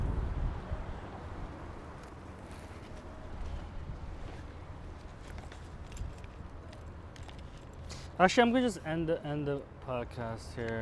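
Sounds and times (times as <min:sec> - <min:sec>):
strong wind buffeting the microphone outdoors: 0:00.0 - 0:02.0, 0:03.0 - 0:05.0
faint street noise: 0:00.0 - 0:10.8
speech: 0:08.2 - 0:10.8.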